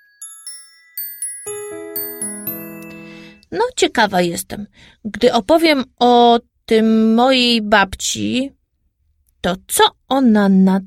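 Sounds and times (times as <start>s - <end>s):
Easter church bells ringing in a peal: 1.0s - 3.4s
speech: 3.5s - 8.6s, 9.4s - 10.8s.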